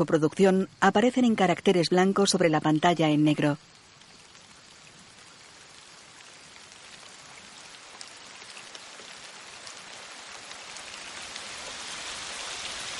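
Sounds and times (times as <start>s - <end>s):
speech: 0.0s - 3.8s
steady rain falling at night on a meadow: 0.0s - 12.9s.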